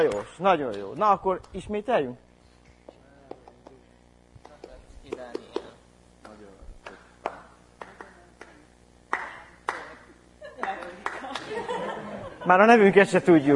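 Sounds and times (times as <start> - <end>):
speech: 0.0 - 2.3, 12.5 - 13.5
hand claps beating out syllables: 2.8 - 3.8, 4.4 - 11.7
laughter: 9.9 - 13.0.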